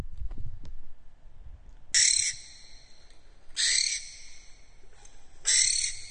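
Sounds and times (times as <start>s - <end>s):
barn owl screeching: 2.0s - 2.7s, 3.6s - 4.4s, 5.4s - 6.1s.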